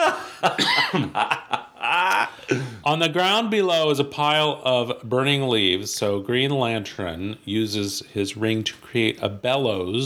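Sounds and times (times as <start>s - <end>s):
breathy laugh-like voiced sounds: 0.0s - 2.9s
sharp coughs: 0.4s - 1.2s
speech: 2.9s - 10.0s.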